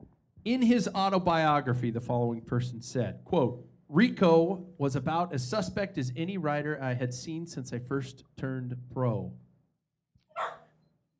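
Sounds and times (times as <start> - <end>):
speech: 0.4 - 9.4
dog barking: 10.3 - 10.8.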